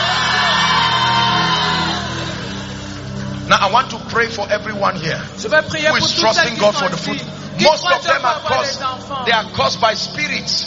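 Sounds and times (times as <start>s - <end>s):
large crowd at a prayer meeting shouting in unison: 0.0s - 2.7s
speech: 3.7s - 10.6s.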